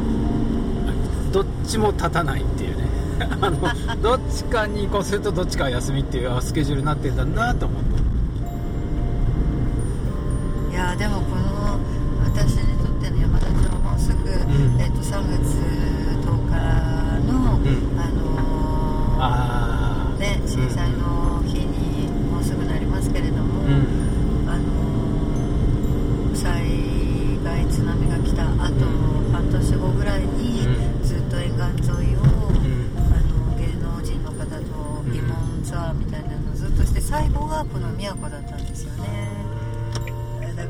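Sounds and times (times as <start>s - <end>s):
kei van engine droning while driving: 0.0s - 40.6s
road noise: 0.0s - 40.6s
speech: 1.3s - 8.1s, 10.8s - 11.4s, 14.6s - 15.8s, 20.2s - 21.3s, 35.7s - 39.3s
laughter: 3.1s - 4.2s.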